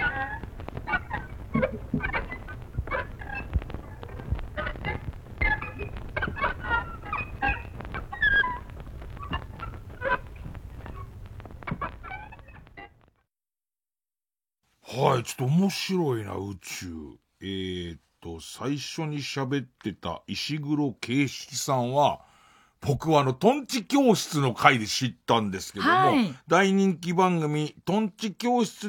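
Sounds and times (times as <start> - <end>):
nightingale wooden floor boards chirping when walked on: 0.0 - 13.1
speech: 15.2 - 28.8.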